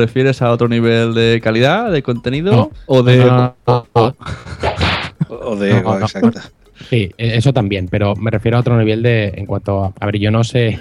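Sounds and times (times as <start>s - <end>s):
speech: 0.0s - 10.8s
cartoonish slap sound effect with tonal bursts and whip-like smack: 4.6s - 5.2s.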